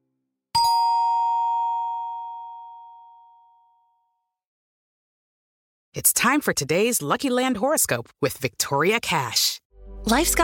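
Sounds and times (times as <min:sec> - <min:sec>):
doorbell chime: 0:00.6 - 0:04.1
speech: 0:06.0 - 0:10.4.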